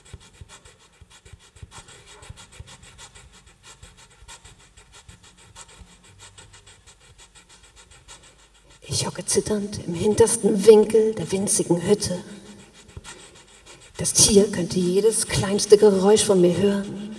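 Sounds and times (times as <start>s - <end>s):
hands rubbing briskly together: 0.0s - 17.1s
speech: 9.0s - 12.3s, 14.0s - 17.0s.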